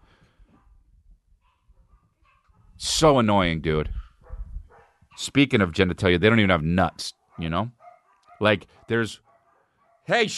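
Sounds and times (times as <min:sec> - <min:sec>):
dogs barking: 0:00.5 - 0:00.8, 0:01.4 - 0:03.0, 0:03.8 - 0:05.6, 0:06.7 - 0:10.2
speech: 0:03.0 - 0:04.0, 0:05.2 - 0:07.8, 0:08.4 - 0:09.2, 0:10.1 - 0:10.3.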